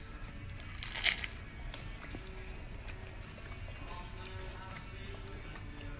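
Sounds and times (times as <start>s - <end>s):
faint crunching chews: 0.5s - 5.9s
crisp crackly bite of flaky honey-drenched phyllo baklava: 0.6s - 1.4s.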